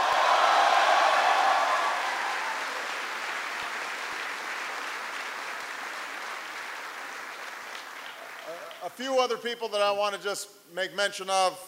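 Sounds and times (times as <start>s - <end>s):
crowd applauding at an event in the Republic of Korea: 0.0s - 9.0s
speech: 8.8s - 11.6s.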